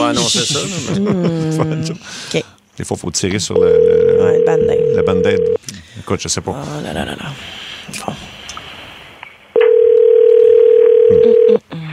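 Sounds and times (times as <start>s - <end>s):
speech: 0.1s - 8.2s
telephone ringback tone while a call is placed: 3.6s - 5.6s, 9.6s - 11.6s.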